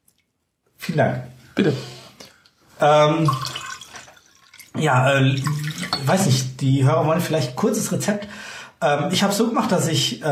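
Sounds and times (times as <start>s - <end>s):
speech: 0.9s - 2.0s, 2.8s - 3.6s, 4.8s - 10.3s
short resonant glugging pour of egg liqueur: 2.8s - 6.6s
homemade egg liqueur pouring into a glass: 3.2s - 6.2s.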